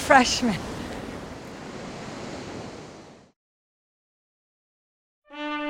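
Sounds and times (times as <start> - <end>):
ocean waves surf washing and splashing: 0.0 - 3.4
speech: 0.1 - 0.7.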